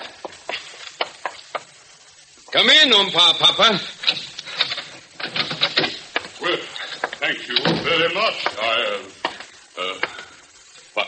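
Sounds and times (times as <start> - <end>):
shower water spraying: 0.0 - 11.0
voices: 2.4 - 11.0
speech: 2.5 - 4.2.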